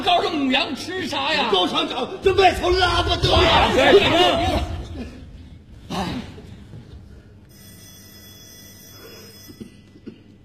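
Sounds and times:
speech: 0.4s - 4.7s
low rumble: 2.0s - 7.5s
telephone ringing: 7.5s - 10.0s.

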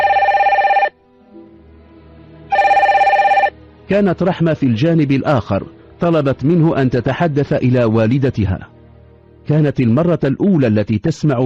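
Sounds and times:
telephone bell ringing: 0.0s - 1.0s, 2.5s - 3.6s
speech: 3.9s - 8.7s, 9.5s - 11.4s.

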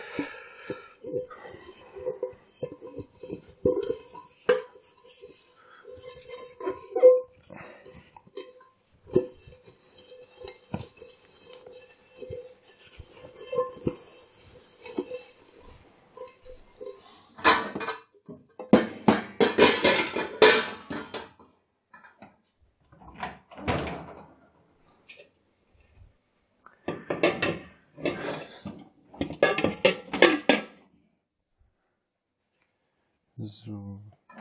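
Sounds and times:
large cooking pot being dried by hand: 0.0s - 21.3s, 26.9s - 30.8s
dishes clattering during dishwashing: 0.0s - 21.4s, 26.9s - 30.8s.

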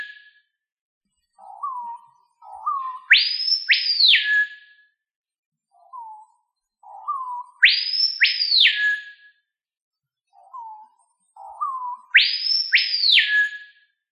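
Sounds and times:
bird calling with low whistles and high down-slurred notes: 0.0s - 0.5s, 1.4s - 4.8s, 5.8s - 9.3s, 10.4s - 13.9s.

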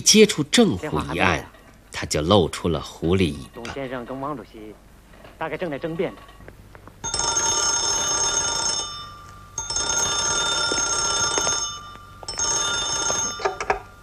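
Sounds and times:
speech: 0.0s - 6.4s
telephone bell ringing: 7.0s - 14.0s.

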